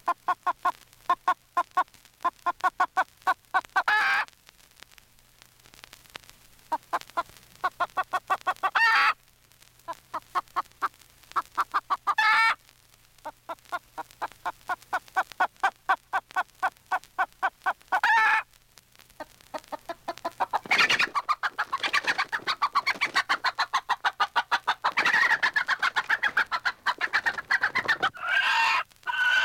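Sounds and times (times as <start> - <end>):
chicken distress cries from a record: 0.0 - 4.3, 6.7 - 9.2, 11.4 - 12.6, 13.2 - 18.5, 19.2 - 29.4.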